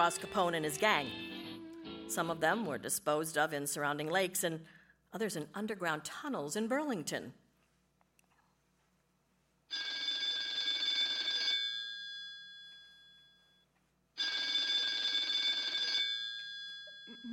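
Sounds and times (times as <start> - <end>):
speech: 0.0 - 1.3, 2.1 - 7.4
telephone bell ringing with metallic trilling: 9.7 - 13.6, 14.2 - 17.3.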